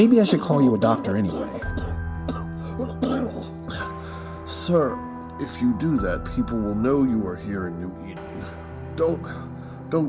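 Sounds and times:
speech: 0.0 - 1.8, 4.7 - 10.0
unwell man coughing in harsh bursts: 1.8 - 3.9.

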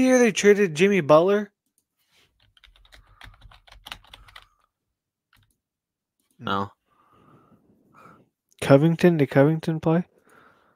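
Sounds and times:
speech: 0.0 - 1.5, 6.4 - 6.8, 8.7 - 10.1
fingers typing on a computer keyboard: 2.3 - 4.7, 5.3 - 5.6.

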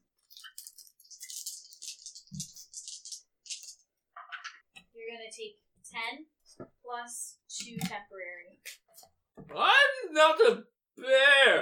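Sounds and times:
pair of dice clattering and rattling: 0.4 - 3.8
speech: 5.4 - 8.7, 9.5 - 11.6.

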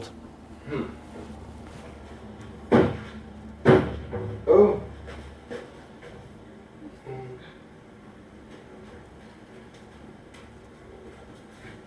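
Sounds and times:
speech: 0.0 - 1.0
quiet knocks: 2.4 - 6.3
heavy thumps of an adult bumping into a closed cabinet door: 2.7 - 4.6.

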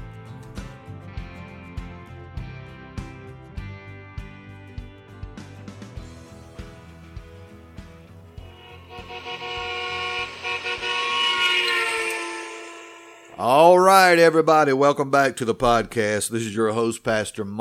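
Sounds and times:
car driving past: 8.4 - 13.4
speech: 13.4 - 17.5.

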